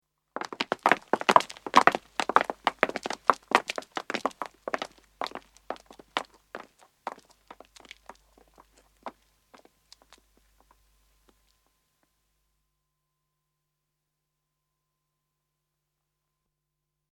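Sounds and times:
footsteps of two men and two women walking on pavement: 0.4s - 11.5s.

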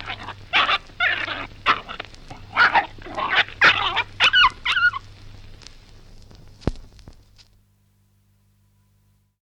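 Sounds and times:
dogs snarling in a dog fight: 0.0s - 5.0s.

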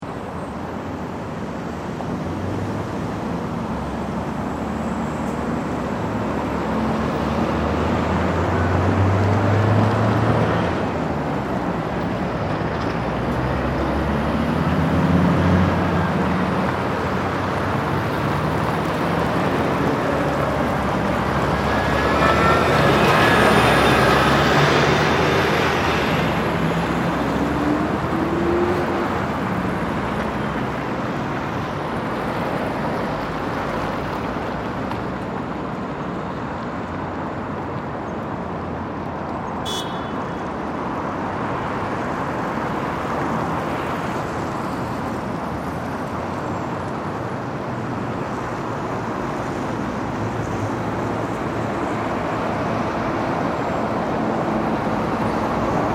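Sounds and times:
heavy traffic of big trucks passing on a big street: 0.0s - 55.9s
car horn honking: 39.6s - 40.4s.

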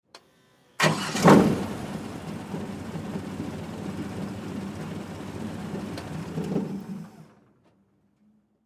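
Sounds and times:
airboat engine starting, idling, revving and shutting off: 0.8s - 7.3s.

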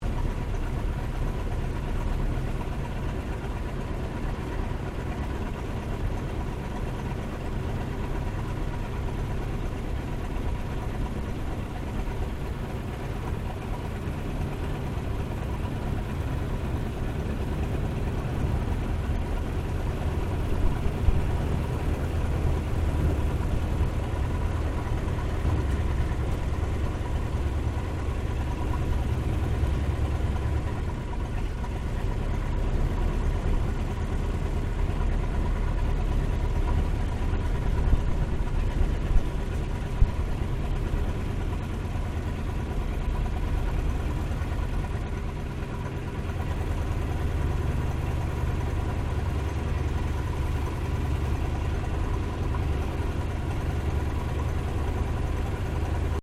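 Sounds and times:
replica 1916 Sopwith Pup biplane taxiing heard from the interior: 0.0s - 56.2s.

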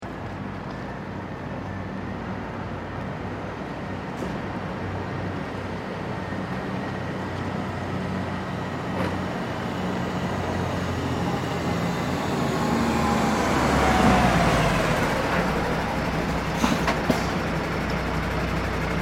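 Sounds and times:
street traffic noise: 0.0s - 19.0s
trucks stopping and starting in a queue: 0.0s - 19.0s.

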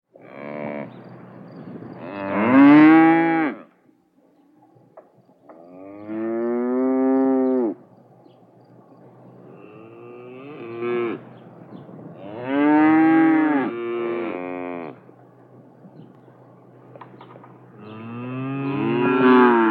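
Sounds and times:
cows mooing: 2.0s - 3.6s, 5.7s - 7.8s, 9.5s - 11.3s, 12.2s - 15.0s, 17.8s - 19.6s.

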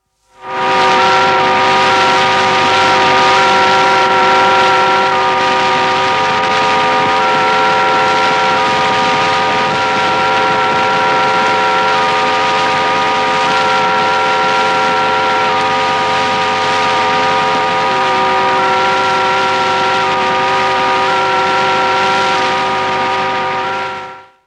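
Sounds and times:
satellite telemetry signal: 0.4s - 24.4s.

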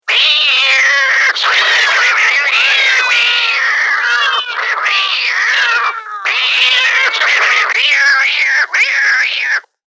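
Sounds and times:
tomcats fighting: 0.0s - 9.7s.

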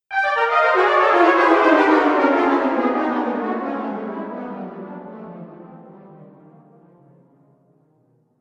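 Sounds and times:
cartoon failure brass sting with delay: 0.1s - 5.2s.

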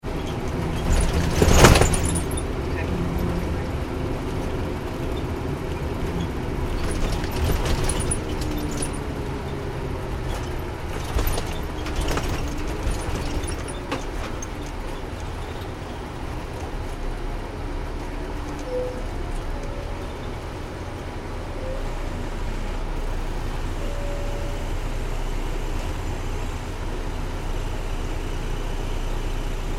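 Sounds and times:
bus driving in New York City recorded inside: 0.0s - 29.7s.

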